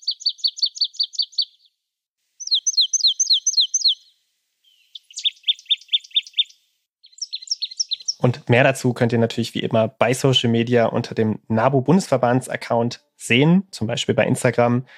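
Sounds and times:
marsh tit song: 0.0 - 1.8, 2.4 - 8.3
speech: 8.2 - 14.9.

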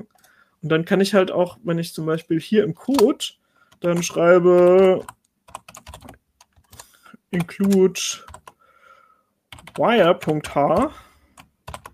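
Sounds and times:
speech: 0.6 - 5.2, 7.3 - 8.3, 9.8 - 11.0
typing on a keyboard: 3.7 - 8.6, 9.5 - 11.9.

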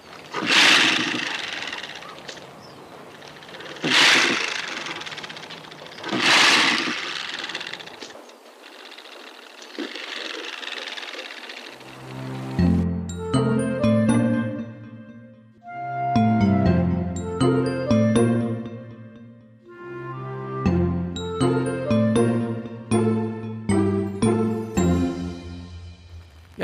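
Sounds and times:
porcupine rattling its quills: 0.0 - 12.1
tuneful plucked music: 11.9 - 26.2.

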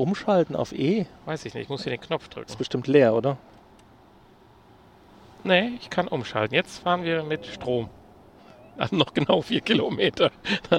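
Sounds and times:
speech: 0.0 - 3.6, 5.4 - 8.0, 8.8 - 10.7
road noise from inside a moving car: 4.0 - 10.4
wind rush over a moving car: 6.7 - 9.0.

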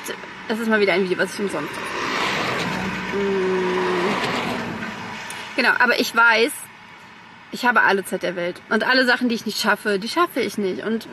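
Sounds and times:
humming engine tone: 0.0 - 5.7
outdoor traffic rumble: 0.0 - 11.1
speech: 0.1 - 2.0, 3.1 - 3.5, 5.6 - 6.6, 7.5 - 11.1
vehicle passing: 0.2 - 6.0.

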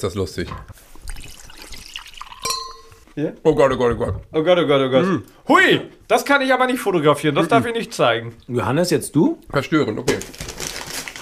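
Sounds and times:
speech: 0.0 - 1.0, 3.2 - 10.5
hot water from a kettle pouring into a novelty mug: 1.0 - 3.1
short ringing clink of ceramic mug: 2.2 - 3.1.

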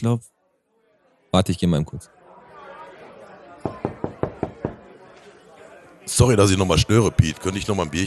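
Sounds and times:
speech: 0.0 - 0.4, 1.3 - 2.2, 6.1 - 8.0
faint murmur of voices: 0.0 - 8.0
sharp knocks on a door from outside: 3.6 - 4.8.

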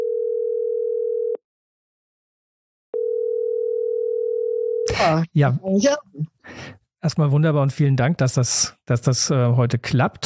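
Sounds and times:
telephone line tone as a call is put through: 0.0 - 1.4, 3.0 - 4.8
speech: 5.0 - 10.2.

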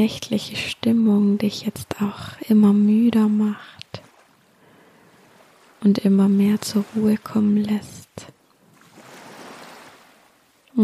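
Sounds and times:
speech: 0.0 - 4.0, 5.8 - 8.3
ocean waves washing in at night: 1.5 - 10.8.

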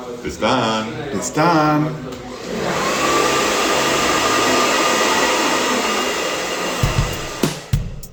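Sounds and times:
speech: 0.2 - 2.2
loud hair dryer blowing: 2.2 - 8.0.

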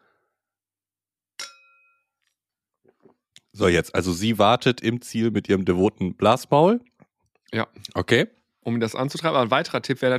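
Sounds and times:
two glasses clinking in a toast: 1.4 - 2.1
speech: 2.9 - 6.9, 7.5 - 10.1.

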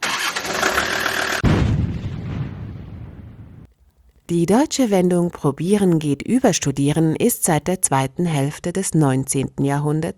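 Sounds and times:
just-repaired car engine starting: 0.0 - 1.4
speech: 4.3 - 10.1.

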